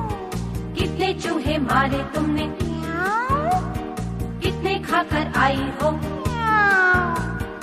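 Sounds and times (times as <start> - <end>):
cat meowing: 0.0 - 0.5, 2.8 - 3.7, 6.2 - 7.5
speech: 1.2 - 3.7, 4.8 - 6.9.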